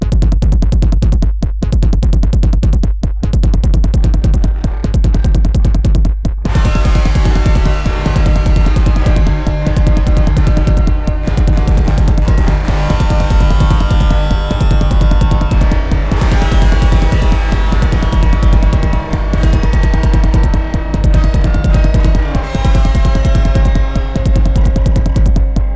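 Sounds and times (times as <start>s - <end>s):
music: 0.0s - 25.7s.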